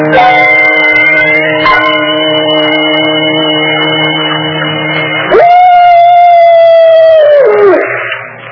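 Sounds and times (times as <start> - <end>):
droning bell-like ringing tone: 0.1 - 5.3
wolf howling: 5.3 - 7.9.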